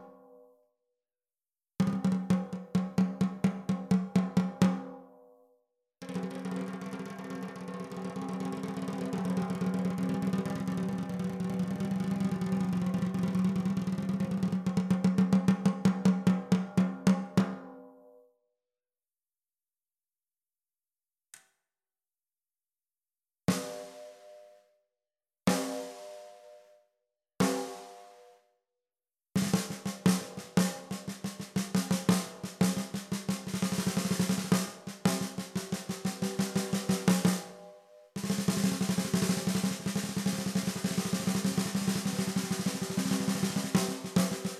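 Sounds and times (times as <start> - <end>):
14x5 snare drum: 1.8 - 4.9, 6.0 - 17.7, 23.5 - 24.5, 25.5 - 26.6, 27.4 - 28.3, 29.4 - 44.5.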